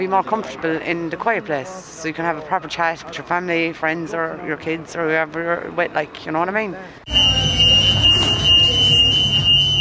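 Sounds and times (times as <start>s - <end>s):
speech: 0.0s - 8.0s
busy indoor ambience of a fast food restaurant: 0.0s - 9.7s
piercing electronic alarm tone in a fast food restaurant: 7.1s - 9.7s.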